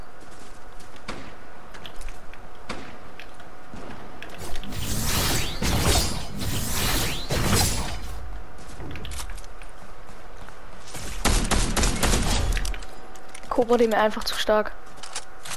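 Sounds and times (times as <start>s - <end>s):
video game gunfire: 4.4s - 8.7s, 11.0s - 12.9s
speech: 13.6s - 14.9s.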